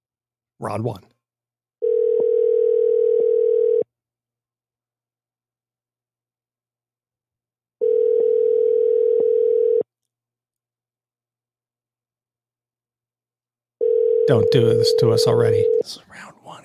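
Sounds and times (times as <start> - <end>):
speech: 0.6 - 1.1, 14.3 - 16.6
telephone line tone while placing a call: 1.8 - 3.9, 7.8 - 9.9, 13.8 - 15.8.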